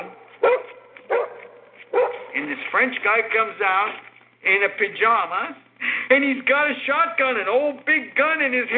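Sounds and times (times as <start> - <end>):
dogs barking: 0.0 - 2.5
speech: 2.5 - 8.7.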